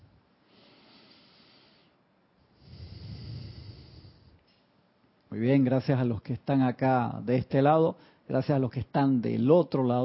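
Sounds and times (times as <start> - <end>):
slow deep breath in and exhale: 0.0 - 4.5
speech: 5.4 - 10.0.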